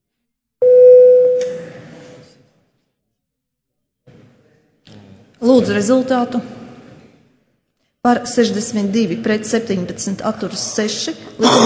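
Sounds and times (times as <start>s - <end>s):
parliament voting call bell with electronic tone: 0.6s - 1.5s
speech: 5.4s - 6.6s, 8.0s - 11.6s.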